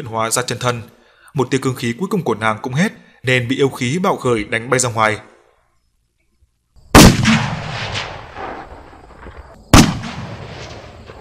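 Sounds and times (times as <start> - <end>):
speech: 0.0 - 5.3
loud explosive blasts sound effect for a clash of magic against a water barrier: 6.9 - 11.2.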